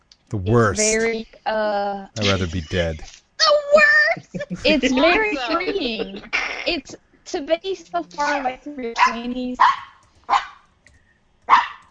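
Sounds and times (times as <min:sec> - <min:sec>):
speech: 0:00.3 - 0:09.9
laughter: 0:00.4 - 0:01.1, 0:02.2 - 0:03.0, 0:03.7 - 0:06.8
dog barking: 0:09.0 - 0:10.6, 0:11.5 - 0:11.8.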